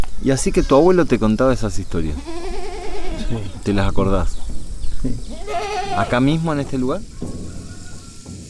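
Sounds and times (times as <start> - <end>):
speech: 0.2 - 2.4, 3.3 - 4.4, 5.0 - 7.4
flock of sheep bleating as it arrives: 2.2 - 3.6, 5.3 - 6.4.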